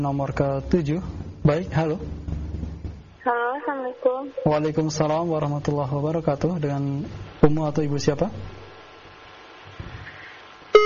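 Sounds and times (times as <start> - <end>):
speech: 0.0 - 2.2, 3.2 - 8.6
faint phone line hiss: 10.1 - 10.8.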